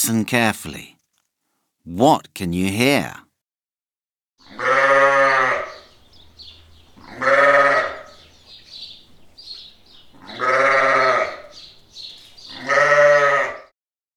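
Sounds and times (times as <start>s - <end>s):
speech: 0.0s - 1.0s, 1.8s - 3.2s
sheep bleating: 4.4s - 5.9s, 7.0s - 8.2s, 10.2s - 11.6s, 12.5s - 13.7s.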